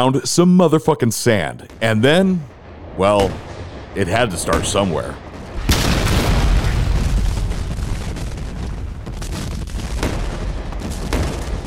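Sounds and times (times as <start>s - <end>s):
speech: 0.0s - 5.2s
sharper artillery blasts: 1.6s - 9.0s
heavy artillery bombardment of a Civil War fort at Fort Sumter: 1.6s - 11.6s.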